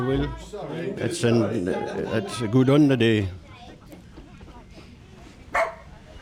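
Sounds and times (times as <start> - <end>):
speech: 0.0 - 3.4
golden retriever barking: 5.5 - 6.0.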